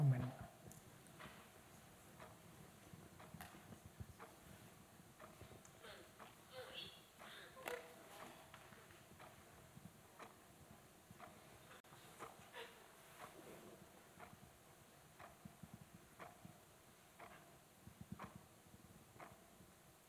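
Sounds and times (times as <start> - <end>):
clock ticking: 0.0 - 20.0.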